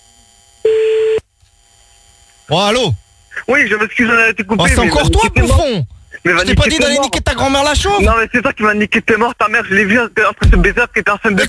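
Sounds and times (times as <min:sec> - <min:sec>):
telephone line tone while a call is redialed: 0:00.6 - 0:01.2
speech: 0:02.5 - 0:11.4.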